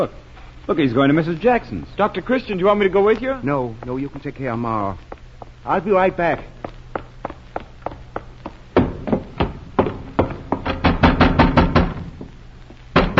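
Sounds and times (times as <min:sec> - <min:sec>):
speech: 0:00.0 - 0:06.6
knocking on a door: 0:08.8 - 0:12.3, 0:13.0 - 0:13.1.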